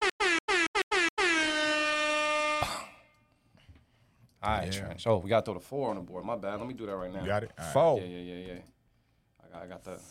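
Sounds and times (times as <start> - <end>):
air horn blasts: 0.0 - 2.8
speech: 4.4 - 8.8, 9.5 - 10.0.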